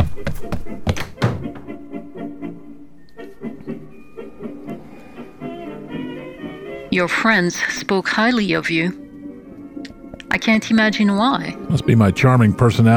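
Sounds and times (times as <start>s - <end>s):
door pulled shut with heavy thuds: 0.9s - 1.7s
speech: 6.9s - 9.0s, 10.4s - 12.9s.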